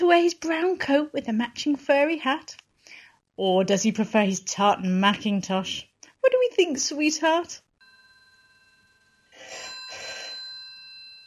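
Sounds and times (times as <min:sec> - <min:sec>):
speech: 0:00.1 - 0:02.6, 0:03.4 - 0:07.6
telephone bell ringing: 0:07.8 - 0:11.2.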